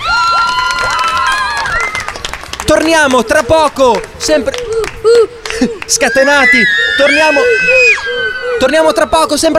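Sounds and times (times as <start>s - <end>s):
class of children cheering and shouting at a horse fair in Verona: 0.0s - 2.3s, 4.6s - 9.5s
speech: 2.7s - 9.5s.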